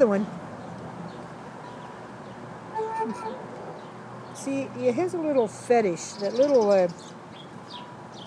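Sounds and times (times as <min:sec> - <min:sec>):
speech: 0:00.0 - 0:00.4, 0:03.0 - 0:03.6, 0:04.4 - 0:07.2
chickens clucking in a coop: 0:02.8 - 0:03.9.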